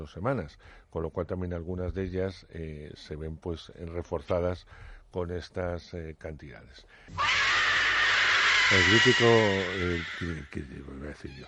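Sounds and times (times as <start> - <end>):
speech: 0.0 - 7.7, 8.7 - 11.4
human scream from a horror TV series intro: 7.1 - 10.5.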